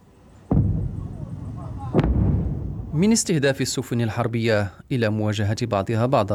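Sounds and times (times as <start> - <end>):
steady low rumble of engine or wind noise: 0.0 - 4.9
gunshots fired from a naval drone boat: 0.5 - 4.0
speech: 3.0 - 6.3.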